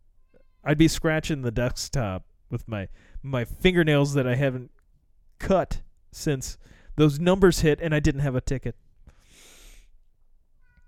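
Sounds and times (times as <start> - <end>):
speech: 0.7 - 4.8, 5.4 - 8.8
breathy hissing noise: 9.2 - 9.9
cat meowing: 10.6 - 10.8.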